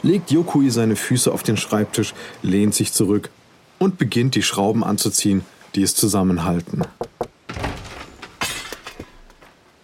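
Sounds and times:
speech: 0.0s - 7.6s
knocking on a door: 6.8s - 7.9s
clattering thuds: 6.8s - 9.6s.

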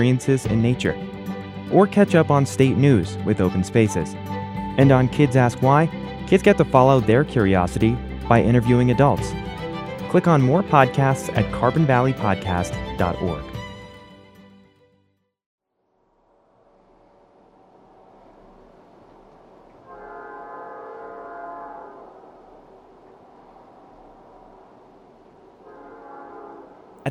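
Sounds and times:
speech: 0.0s - 13.6s
train horn: 19.8s - 22.4s, 25.6s - 27.0s.

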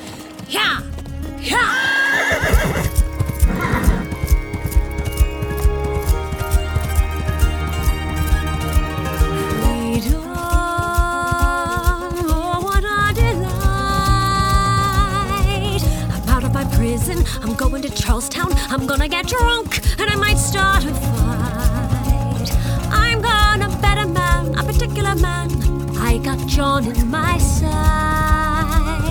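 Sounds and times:
horse hooves galloping: 0.0s - 29.0s
horse whinnying loudly: 1.4s - 10.0s, 12.5s - 24.5s.

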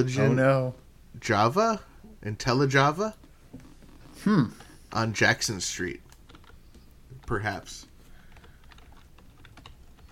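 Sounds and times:
speech: 0.0s - 3.2s, 4.2s - 6.0s, 7.3s - 7.9s
typing on a computer keyboard: 6.0s - 7.4s, 8.2s - 10.1s.

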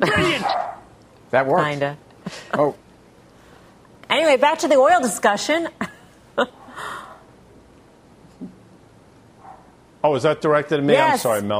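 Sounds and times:
upset dogs barking: 0.2s - 0.9s
speech: 1.3s - 2.8s, 4.1s - 7.0s, 10.0s - 11.5s.

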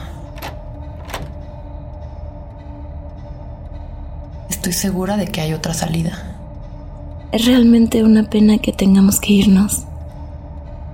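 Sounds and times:
locked door rattling in an old library: 0.2s - 1.6s
speech: 4.6s - 6.3s, 7.3s - 9.9s.

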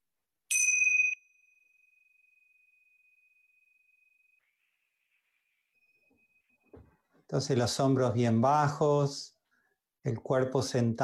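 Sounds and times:
small bells ringing: 0.5s - 4.5s
speech: 7.3s - 9.4s, 10.0s - 11.0s.

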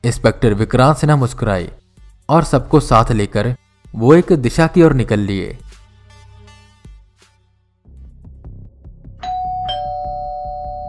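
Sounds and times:
speech: 0.0s - 5.6s
electronic doorbell ding-dong chime at a door: 9.2s - 10.8s.

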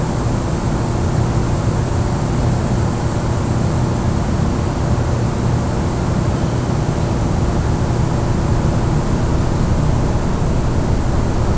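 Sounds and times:
faint constant hum in an empty press room: 0.0s - 11.5s
steady dense low rumble in an empty press room: 7.5s - 11.5s.

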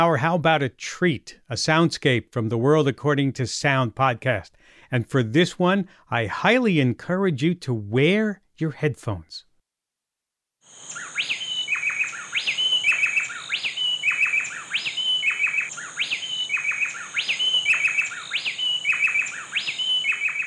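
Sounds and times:
speech: 0.0s - 9.5s
two bay wrens singing a call-and-response duet: 10.6s - 20.4s.

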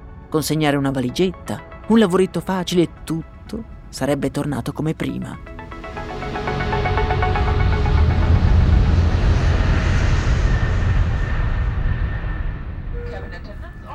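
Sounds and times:
speech: 0.3s - 5.5s
airplane in flight roaring: 5.6s - 13.9s.

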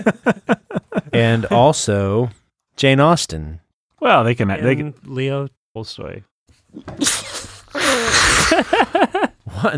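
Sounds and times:
speech: 0.0s - 0.5s, 1.2s - 7.2s, 7.9s - 9.0s, 9.6s - 9.7s
laughter: 0.0s - 1.5s, 8.3s - 9.7s
sneeze: 6.9s - 8.7s.

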